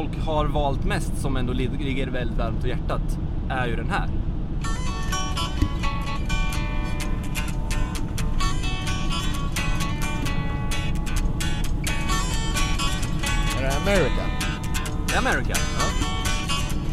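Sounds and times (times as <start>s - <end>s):
speech: 0.0s - 5.0s, 13.8s - 14.2s, 15.1s - 16.1s
soft rock song: 4.7s - 16.9s.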